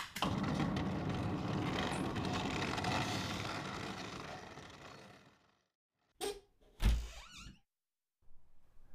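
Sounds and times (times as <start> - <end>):
bedroom window and shutter being pushed open: 0.2 - 5.0.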